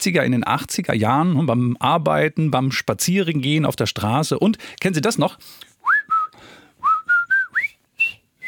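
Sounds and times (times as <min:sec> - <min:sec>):
speech: 0:00.0 - 0:05.7
person whistling the melody of a famous whistling song: 0:05.8 - 0:08.4.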